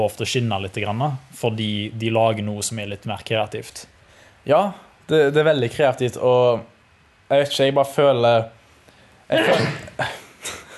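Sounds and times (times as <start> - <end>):
speech: 0.0 - 6.7, 7.3 - 8.6, 9.3 - 10.2
bursts of breath: 4.0 - 4.4
sneeze: 9.3 - 10.6.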